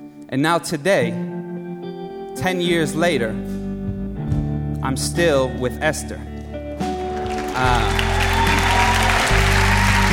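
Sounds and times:
speech: 0.3 - 1.3, 2.4 - 3.6, 4.8 - 6.3, 7.6 - 8.0
audience applause: 7.2 - 10.1.

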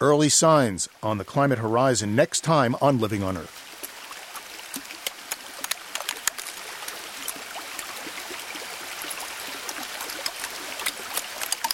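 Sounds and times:
speech: 0.0 - 3.6
trickling meltwater at Alaska's Columbia Glacier: 0.0 - 11.7
melting glacier ice popping and crackling at Alaska's Columbia Glacier: 3.8 - 11.7.

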